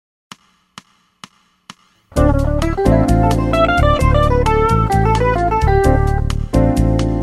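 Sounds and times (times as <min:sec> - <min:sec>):
backing track for improvisation exercises: 0:02.1 - 0:07.1.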